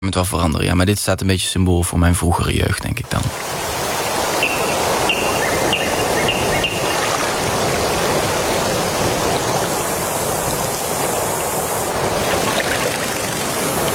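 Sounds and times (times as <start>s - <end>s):
speech: 0.0s - 3.4s
flowing water rushing: 3.0s - 13.9s
bird-like chirps: 4.3s - 7.1s.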